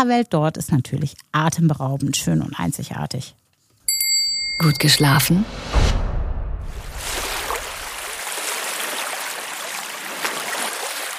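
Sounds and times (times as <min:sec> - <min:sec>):
speech: 0:00.0 - 0:03.4, 0:04.6 - 0:06.0
gentle waves lapping beneath an overwater villa: 0:06.8 - 0:11.1.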